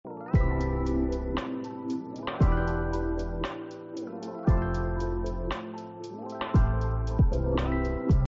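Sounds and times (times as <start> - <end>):
background music: 0.0 - 8.2.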